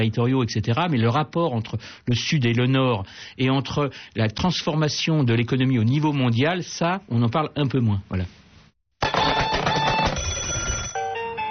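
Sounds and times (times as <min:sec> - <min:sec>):
speech: 0:00.0 - 0:08.4
several telephone bells ringing: 0:09.0 - 0:11.4.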